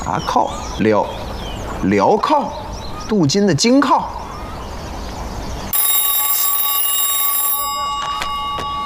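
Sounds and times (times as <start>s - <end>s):
speech: 0.0s - 4.2s
telephone bell ringing for an incoming call: 5.7s - 8.8s.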